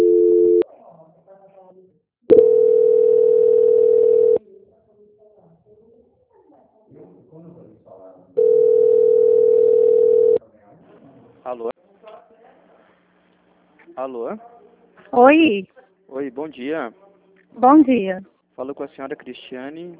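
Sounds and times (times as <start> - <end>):
telephone tone during a call transfer: 0.0 - 0.6, 2.3 - 4.4, 8.4 - 10.4
speech: 14.0 - 14.5, 15.1 - 17.0, 17.6 - 19.9.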